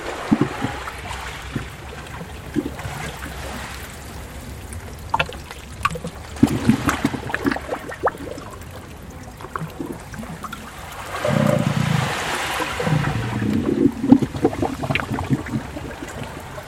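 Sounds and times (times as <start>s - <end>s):
sea water washing and trickling among rocks: 0.0s - 16.6s.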